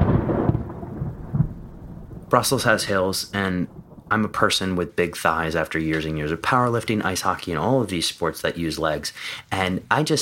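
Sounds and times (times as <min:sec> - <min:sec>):
deep thunder rumbling: 0:00.0 - 0:07.7
heavy rain downpour: 0:00.0 - 0:08.4
speech: 0:02.3 - 0:10.2.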